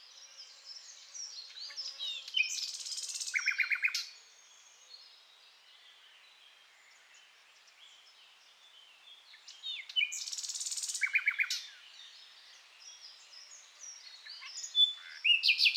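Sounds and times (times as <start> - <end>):
common nightingale Luscinia megarhynchos song: 0.0 - 15.7
faint background hiss: 0.0 - 15.7.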